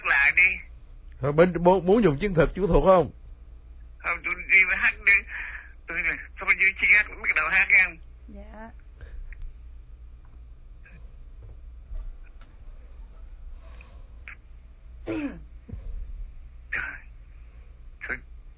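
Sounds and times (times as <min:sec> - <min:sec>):
low hum: 0:00.0 - 0:18.5
speech: 0:01.2 - 0:03.2, 0:04.1 - 0:08.8, 0:15.1 - 0:15.4, 0:18.1 - 0:18.3
man clearing throat: 0:15.0 - 0:15.5
man coughing: 0:15.0 - 0:15.5.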